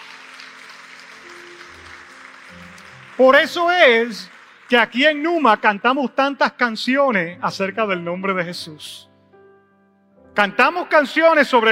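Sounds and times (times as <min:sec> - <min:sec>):
large church audience applauding: 0:00.0 - 0:06.1
speech: 0:02.6 - 0:09.1, 0:10.4 - 0:11.7.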